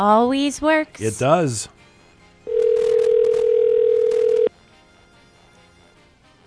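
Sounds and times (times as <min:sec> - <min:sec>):
speech: 0:00.0 - 0:01.8
electronic phone ring tone after dialing: 0:02.5 - 0:04.5.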